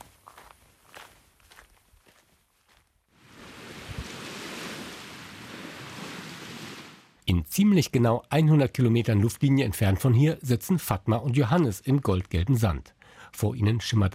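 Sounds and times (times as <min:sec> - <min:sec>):
footsteps along a nature trail: 0:00.0 - 0:04.9
speech: 0:07.3 - 0:14.1.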